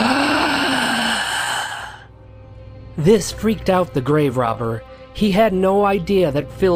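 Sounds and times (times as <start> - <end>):
loud gasping inhale with a strained groan-like tone: 0.0 - 2.1
speech: 3.0 - 6.7.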